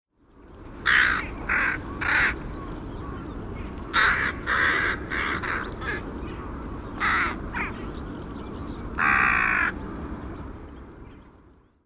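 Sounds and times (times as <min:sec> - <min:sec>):
rook calling: 0:00.8 - 0:03.3, 0:03.9 - 0:08.0, 0:09.0 - 0:09.8.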